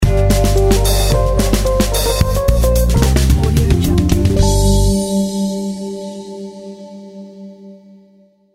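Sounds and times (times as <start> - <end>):
action music logo sting: 0.0 - 6.1.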